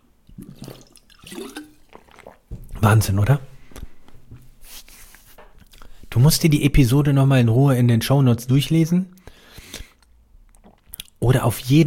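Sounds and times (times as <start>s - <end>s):
person sipping and swallowing water: 0.2s - 2.8s, 5.6s - 6.0s, 9.2s - 11.2s
speech: 2.8s - 3.5s, 6.2s - 9.2s, 11.3s - 11.8s.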